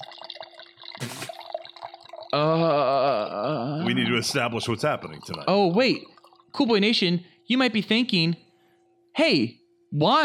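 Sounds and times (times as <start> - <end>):
wine pouring into a glass: 0.0 - 6.8
speech: 3.9 - 8.4, 9.2 - 10.2.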